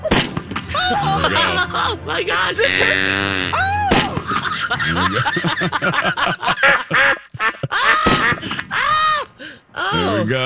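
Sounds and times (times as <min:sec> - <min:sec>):
harsh honks: 0:00.0 - 0:07.2
bird calls: 0:00.0 - 0:09.5
laughter: 0:00.0 - 0:10.4
duck quacks: 0:00.8 - 0:07.3
speech: 0:01.7 - 0:03.8, 0:04.6 - 0:07.2, 0:09.9 - 0:10.4.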